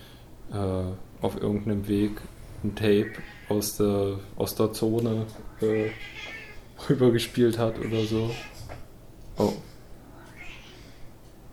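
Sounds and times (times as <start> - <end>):
quiet hum: 0.0 - 11.5
speech: 0.5 - 8.6, 9.4 - 9.7
cat meowing: 3.0 - 3.6, 5.5 - 6.7, 7.6 - 8.6, 10.1 - 11.0.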